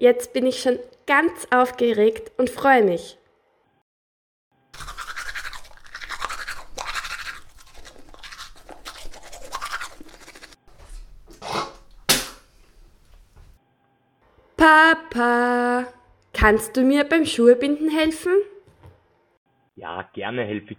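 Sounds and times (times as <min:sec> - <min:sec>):
speech: 0:00.0 - 0:03.2, 0:14.6 - 0:18.5, 0:19.8 - 0:20.7
teeth being brushed with a toothbrush: 0:04.8 - 0:12.0.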